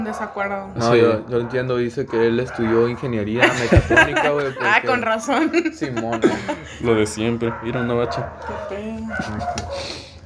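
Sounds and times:
several dogs fighting in a yard on a residential street, yelping, whining and barking: 0:00.0 - 0:04.4, 0:06.5 - 0:10.2
speech: 0:00.0 - 0:10.0
laughter: 0:02.8 - 0:09.9.

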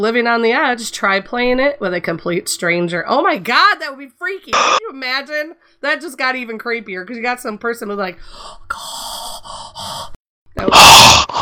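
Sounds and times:
speech: 0:00.0 - 0:11.1
person imitating creepy raspy heavy breathing: 0:08.4 - 0:11.3.

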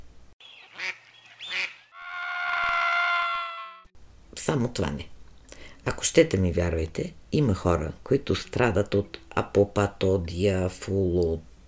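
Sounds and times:
duck quacking: 0:00.5 - 0:03.8
speech: 0:04.5 - 0:05.2, 0:05.8 - 0:11.5.

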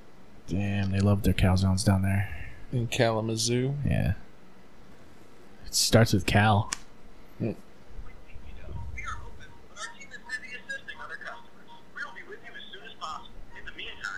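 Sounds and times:
speech: 0:00.5 - 0:04.2, 0:05.7 - 0:06.8, 0:07.4 - 0:07.6
phone ringing on an unanswered call: 0:08.6 - 0:14.1.

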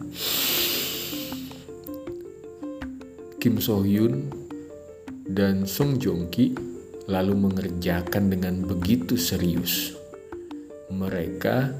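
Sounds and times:
long deep breath drawn in with an airy rush: 0:00.0 - 0:01.7
soft stepping melody of gentle tones: 0:00.0 - 0:11.7
speech: 0:03.4 - 0:04.4, 0:05.3 - 0:10.0, 0:10.9 - 0:11.7.

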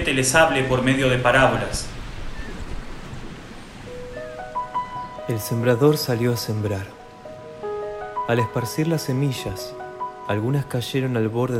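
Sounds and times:
sea waves washing onto a shore: 0:00.0 - 0:11.5
speech: 0:00.1 - 0:01.9, 0:05.3 - 0:07.0, 0:08.3 - 0:11.5
soft sustained musical tones: 0:03.8 - 0:11.5.

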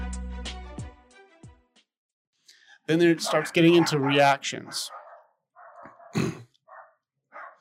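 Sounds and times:
speech: 0:02.9 - 0:05.0
dogs barking and yelping outdoors: 0:03.2 - 0:06.2, 0:06.7 - 0:07.5.

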